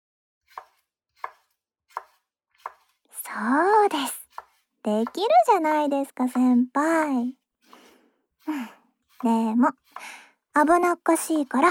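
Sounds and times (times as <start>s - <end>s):
kitchen knife cutting a tomato on a cutting board: 0.4s - 3.0s, 4.0s - 5.4s, 7.5s - 10.2s
speech: 3.3s - 4.2s, 4.8s - 7.4s, 8.5s - 11.6s.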